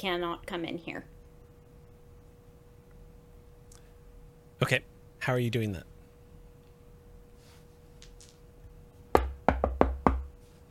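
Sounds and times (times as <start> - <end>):
speech: 0.0 - 1.2, 4.6 - 5.9
knocking on a door: 9.1 - 10.4.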